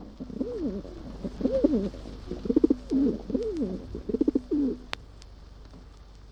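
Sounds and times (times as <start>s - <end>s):
pigeons cooing: 0.0s - 5.0s
low steady hum: 0.0s - 6.3s
faint clicks: 2.8s - 6.3s.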